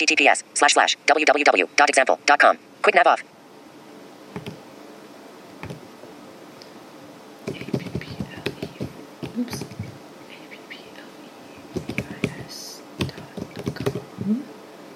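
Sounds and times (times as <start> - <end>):
speech: 0.0 - 3.3, 9.4 - 9.6
keys typed on a computer keyboard: 4.4 - 4.6, 7.5 - 10.0, 11.7 - 14.1.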